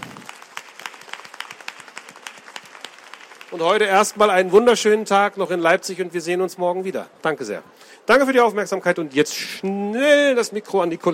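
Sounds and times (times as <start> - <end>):
small crowd applauding: 0.0 - 4.5
speech: 3.5 - 11.1.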